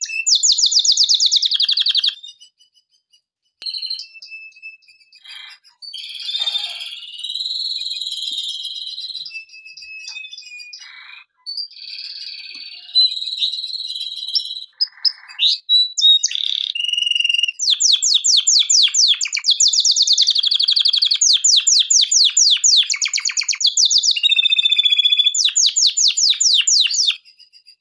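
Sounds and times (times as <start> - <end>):
canary singing a varied song: 0.0 - 27.7.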